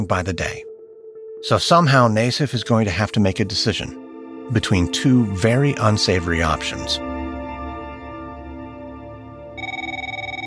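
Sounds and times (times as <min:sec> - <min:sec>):
speech: 0:00.0 - 0:00.7, 0:01.4 - 0:07.1
sustained droning musical background: 0:00.0 - 0:10.4
telephone ringing with a rapidly pulsing electronic trill: 0:09.6 - 0:10.4.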